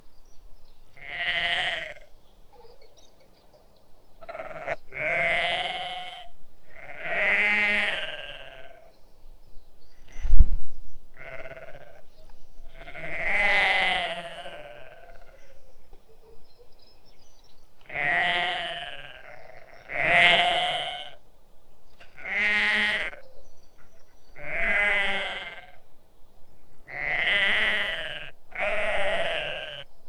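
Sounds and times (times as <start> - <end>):
sheep baaing: 1.0 - 2.0, 4.2 - 8.8, 12.8 - 15.5, 17.9 - 21.2, 22.2 - 23.2, 24.4 - 25.8, 26.9 - 29.8.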